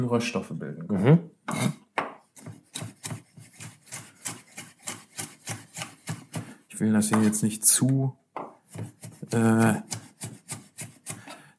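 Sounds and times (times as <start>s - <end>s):
speech: 0.0s - 1.8s, 6.8s - 8.2s, 9.3s - 10.0s
knife chopping leeks, carrots and celery on a kitchen board: 2.0s - 7.4s, 8.4s - 11.5s.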